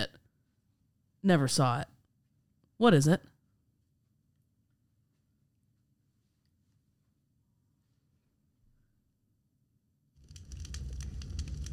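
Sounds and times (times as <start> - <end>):
speech: 1.2 - 1.9, 2.8 - 3.3
campfire crackling: 10.2 - 11.7.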